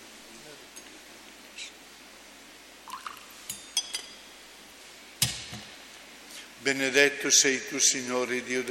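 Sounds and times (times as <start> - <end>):
faint hiss: 0.0 - 8.6
water trickling into wine in a chalice: 2.8 - 3.4
speech: 6.6 - 8.6.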